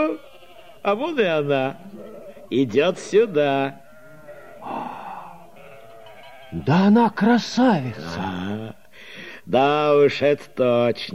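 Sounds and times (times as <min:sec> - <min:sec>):
speech: 0:00.0 - 0:03.8, 0:06.5 - 0:08.8, 0:09.5 - 0:11.1
sheep bleating: 0:00.0 - 0:08.7.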